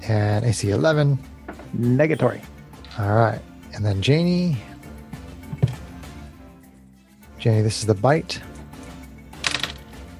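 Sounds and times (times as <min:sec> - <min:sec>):
speech: 0:00.1 - 0:04.7, 0:07.4 - 0:08.5
dice clattering as they are rolled: 0:09.4 - 0:09.9.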